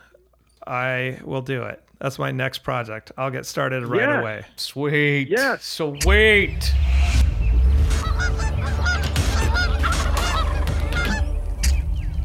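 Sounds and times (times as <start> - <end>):
speech: 0.7 - 6.9
goose honks blown on a goose call: 7.8 - 12.1.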